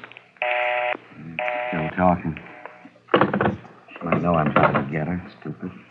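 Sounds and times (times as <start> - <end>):
telephone being dialed with electronic keypad tones: 0.4 - 2.8
overlapping voices: 1.1 - 5.8.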